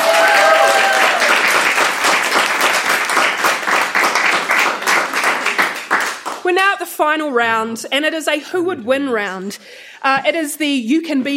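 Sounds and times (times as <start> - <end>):
audience clapping: 0.0 - 6.6
speech: 7.0 - 11.3.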